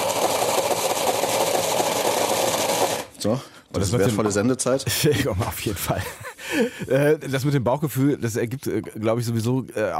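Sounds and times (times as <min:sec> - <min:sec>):
blender motor pureeing wild garlic with olive oil: 0:00.0 - 0:03.2
speech: 0:03.2 - 0:09.9.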